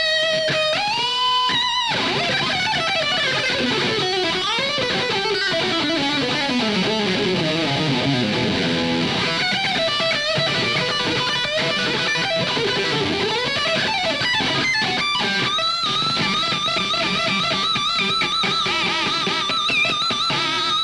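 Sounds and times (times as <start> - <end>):
guitar solo: 0.0 - 20.8.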